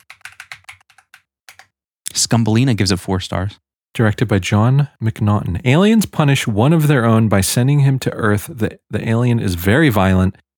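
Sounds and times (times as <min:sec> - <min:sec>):
typing on a computer keyboard: 0:00.0 - 0:01.7
speech: 0:02.2 - 0:10.4.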